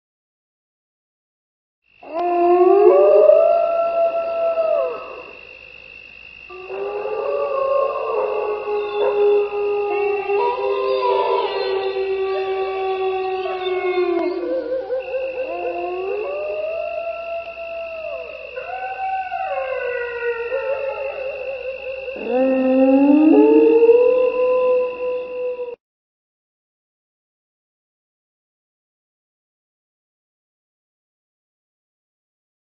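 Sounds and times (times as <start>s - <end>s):
wolves: 2.0s - 25.8s.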